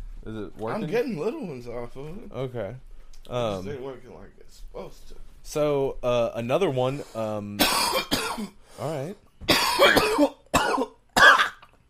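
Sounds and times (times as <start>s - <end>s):
speech: 0.2s - 11.0s
harsh raspy coughs after smoking: 7.6s - 8.6s, 9.5s - 11.7s.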